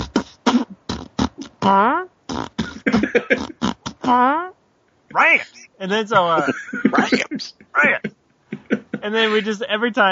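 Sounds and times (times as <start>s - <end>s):
buzzy wavering beatbox tones: 0.0s - 4.2s
person beatboxing: 0.0s - 4.2s
speech: 1.6s - 2.1s, 3.1s - 4.5s, 5.1s - 8.1s, 9.0s - 10.1s
laughter: 2.6s - 3.6s, 6.1s - 9.6s.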